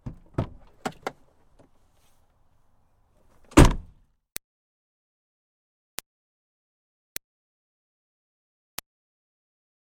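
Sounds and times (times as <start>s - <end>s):
2005 Smartcar Fortwo trunk opening and closing hard: 0.0s - 1.2s, 3.4s - 4.0s.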